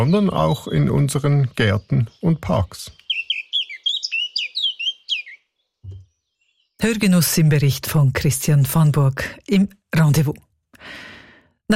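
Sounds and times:
speech: 0.0s - 3.0s, 6.8s - 11.1s
blackcap singing in May: 0.0s - 6.8s.

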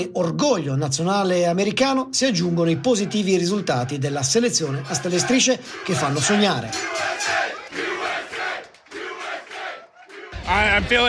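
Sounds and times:
speech: 0.0s - 7.8s, 10.4s - 11.0s
crowd of soccer fans in a bar cheering while watching a televised match: 2.2s - 11.0s.

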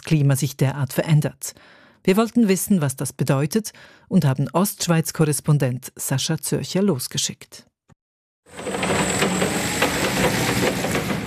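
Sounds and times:
speech: 0.1s - 7.7s
forklift engine hauling crates of freshly picked apples from an orchard: 8.5s - 11.2s.

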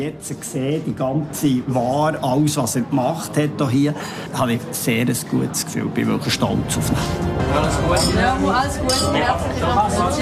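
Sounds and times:
busy murmur of voices and crowd chatter: 0.0s - 10.2s
speech: 0.0s - 10.2s
glasses clinking in a toast: 7.7s - 9.5s.

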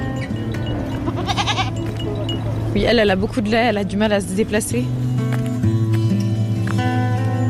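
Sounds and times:
busy background of a goat herd outdoors: 0.0s - 7.4s
goats bleating with a quavering cry outdoors: 1.0s - 2.3s
speech: 2.8s - 5.0s.

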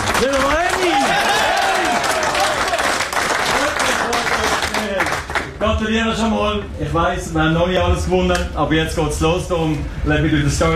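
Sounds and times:
overlapping voices and cheers from a close-packed group: 0.0s - 4.8s
dense applause in a small locker room: 0.0s - 5.6s
speech: 5.8s - 10.7s.

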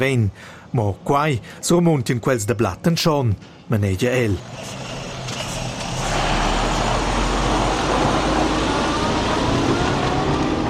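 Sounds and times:
speech: 0.0s - 5.0s
heavy truck driving past on road: 4.4s - 10.6s.

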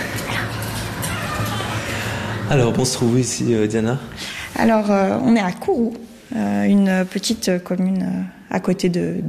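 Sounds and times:
dog whimpering and yipping: 0.1s - 2.1s
speech: 2.5s - 9.2s.

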